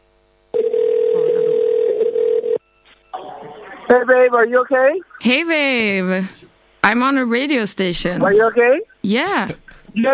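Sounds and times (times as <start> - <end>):
ringback tone of an outgoing phone call from a radio station: 0.6 - 2.7
speech: 3.9 - 10.1.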